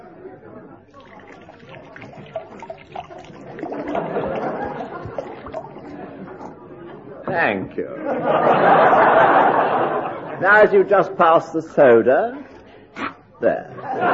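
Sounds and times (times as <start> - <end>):
brandy glugging from a bottle into a glass: 0.9 - 6.6
laughter: 3.4 - 6.9, 7.9 - 10.5, 13.7 - 14.1
speech: 7.3 - 12.5, 13.4 - 14.1.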